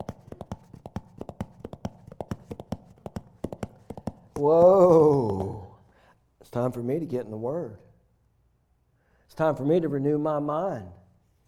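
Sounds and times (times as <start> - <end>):
horse hooves clip-clopping: 0.0 - 5.8
speech: 4.4 - 5.6, 6.5 - 7.9, 9.4 - 11.0
loud drawn-out voiced cry: 4.4 - 5.8.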